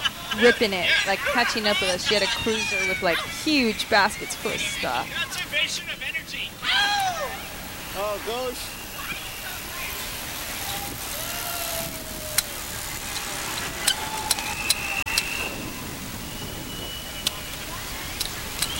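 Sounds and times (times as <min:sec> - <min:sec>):
laughter: 0:00.0 - 0:05.3
steady roar of passing road traffic: 0:00.0 - 0:06.6, 0:07.2 - 0:18.7
faint brake-like squeals: 0:00.0 - 0:18.7
speech: 0:00.4 - 0:07.4, 0:08.0 - 0:08.8
sharp clicks: 0:12.3 - 0:15.4, 0:18.2 - 0:18.7.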